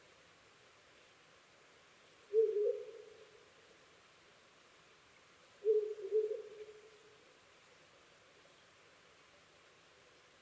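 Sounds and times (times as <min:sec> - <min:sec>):
owl hooting: 0:02.3 - 0:03.2, 0:05.6 - 0:06.9.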